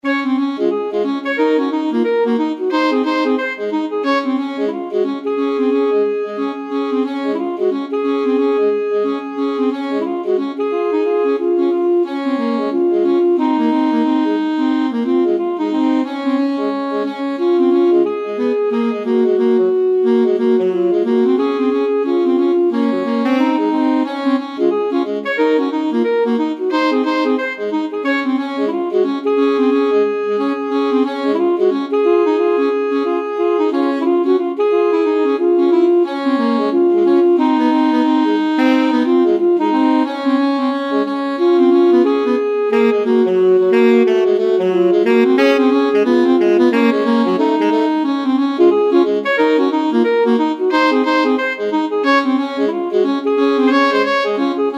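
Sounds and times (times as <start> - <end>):
alto saxophone duet: 0.0 - 54.7.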